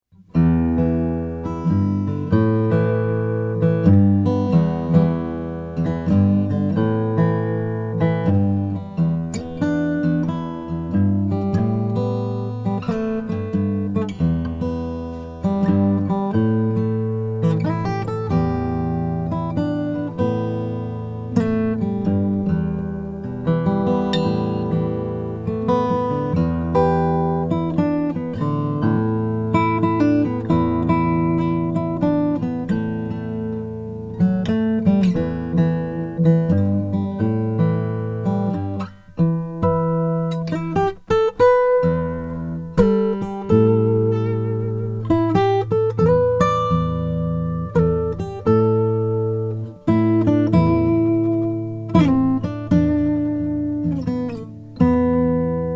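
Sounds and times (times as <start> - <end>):
sunburst acoustic guitar: 0.0 - 55.7.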